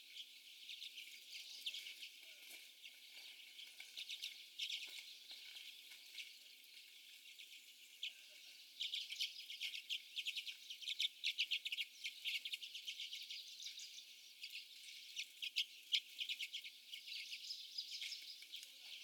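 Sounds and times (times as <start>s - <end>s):
common redpolls chipping and twittering: 0.0s - 19.0s.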